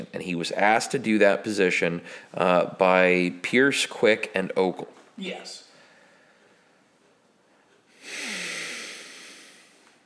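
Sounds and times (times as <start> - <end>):
speech: 0.0 - 5.6
frustrated forceful exhale through the nose: 8.0 - 9.8.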